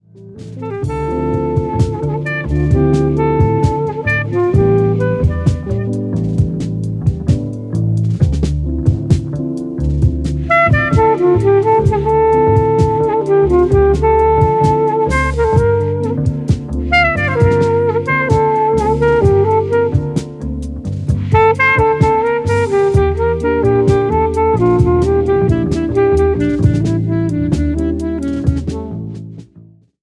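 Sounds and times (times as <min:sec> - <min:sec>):
jazz saxophone: 0:00.0 - 0:29.7.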